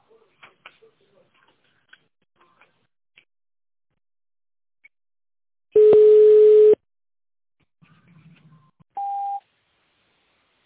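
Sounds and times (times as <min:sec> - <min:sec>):
telephone tones dialing an extension number in tone mode: 0:05.8 - 0:06.8.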